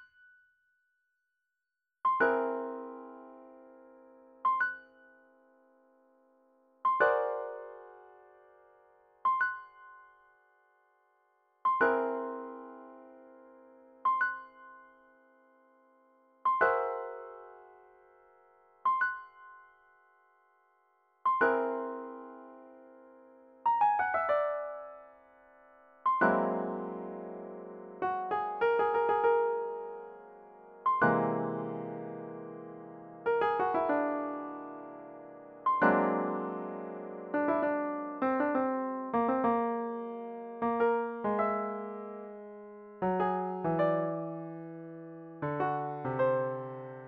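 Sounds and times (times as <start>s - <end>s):
piano playing a whole tone scale: 2.1s - 4.8s, 6.8s - 9.9s, 11.6s - 14.9s, 16.4s - 18.2s, 21.3s - 47.0s.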